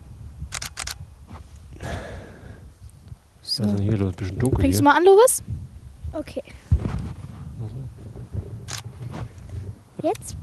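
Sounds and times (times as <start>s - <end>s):
camera shutter clicks taking a photo of a cave: 0.5s - 1.0s, 8.7s - 8.9s
noisy mechanical camera burst: 0.5s - 1.0s
speech: 3.6s - 6.6s, 10.0s - 10.4s.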